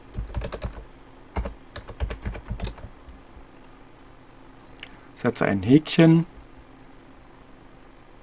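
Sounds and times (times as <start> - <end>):
typing on a computer keyboard: 0.1 - 0.8, 1.4 - 2.9
speech: 5.2 - 6.3.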